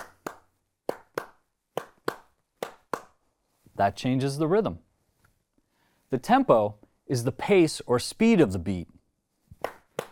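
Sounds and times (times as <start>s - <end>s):
sharp hand claps in an uneven pattern: 0.0s - 3.2s, 9.6s - 10.1s
speech: 3.8s - 4.9s, 6.1s - 9.0s.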